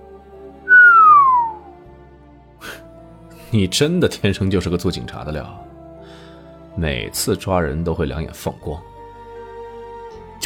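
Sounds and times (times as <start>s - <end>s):
short soft noise: 0.7s - 1.6s
person whistling a downward-sliding note: 0.7s - 1.8s
speech: 3.5s - 5.7s, 6.8s - 8.9s.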